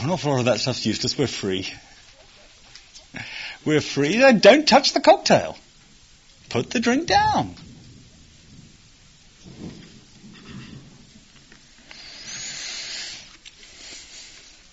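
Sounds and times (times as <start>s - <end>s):
speech: 0.0s - 1.9s, 3.1s - 5.6s, 6.5s - 7.7s
steady hiss of falling rain: 0.0s - 14.7s
low rolling thunder rumbling: 5.7s - 11.9s.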